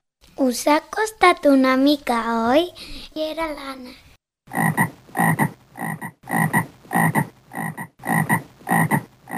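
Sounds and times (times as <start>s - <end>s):
speech: 0.5s - 4.7s
frog croaking: 4.5s - 9.3s.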